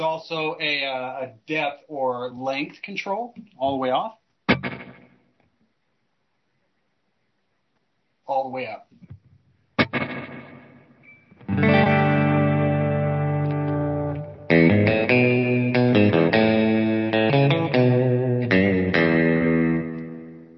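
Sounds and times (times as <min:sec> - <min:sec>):
speech: 0:00.0 - 0:04.8, 0:08.3 - 0:09.1
electric guitar chords through an amp with deep reverb: 0:04.5 - 0:05.2, 0:09.8 - 0:20.5.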